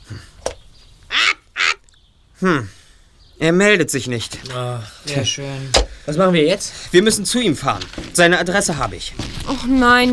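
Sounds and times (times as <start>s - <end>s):
loud harsh bird squawks: 0.0s - 2.0s
speech: 2.4s - 2.8s, 3.4s - 10.1s.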